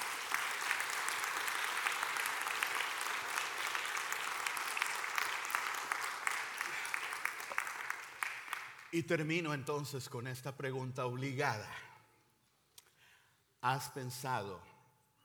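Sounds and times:
room full of people applauding: 0.0s - 8.9s
speech: 8.9s - 11.9s, 13.6s - 14.7s.

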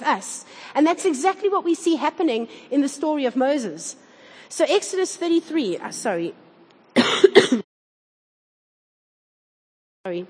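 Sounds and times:
speech: 0.0s - 6.4s, 7.1s - 7.6s, 10.0s - 10.2s
person clearing throat: 7.0s - 7.7s.

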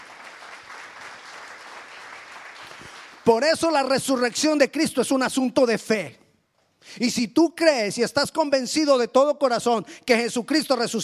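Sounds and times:
audience applauding: 0.0s - 3.4s
speech: 3.2s - 6.2s, 6.8s - 11.0s.

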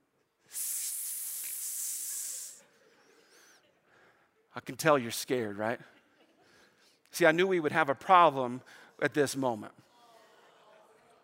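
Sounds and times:
loud sustained snake hiss: 0.5s - 2.6s
speech: 4.6s - 6.0s, 7.1s - 9.8s.

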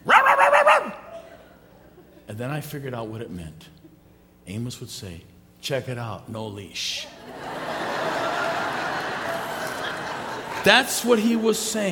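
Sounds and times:
person imitating small dog barking: 0.0s - 1.2s
laughter: 1.1s - 2.3s, 7.1s - 11.9s
speech: 2.4s - 3.8s, 4.5s - 7.2s, 10.6s - 11.9s.

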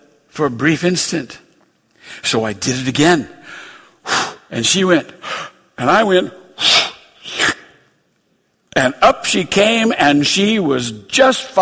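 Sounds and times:
speech: 0.4s - 1.4s, 2.1s - 3.7s, 4.5s - 6.7s, 8.8s - 11.6s
voice imitating breathy puffs of air blown into a baby's face: 6.6s - 7.8s.

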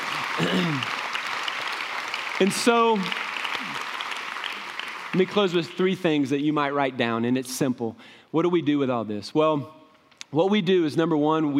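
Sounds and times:
audience applause for a guest: 0.0s - 6.0s
speech: 2.4s - 3.2s, 5.2s - 11.5s.

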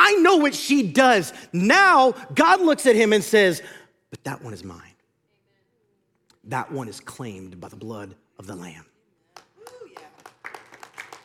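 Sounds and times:
speech: 0.4s - 4.9s, 6.4s - 8.9s
weak scattered clapping from an audience: 9.3s - 11.2s.

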